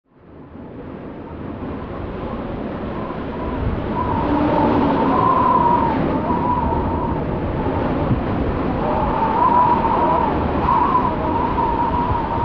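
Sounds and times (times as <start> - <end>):
gusty wind: 0.1 - 12.4.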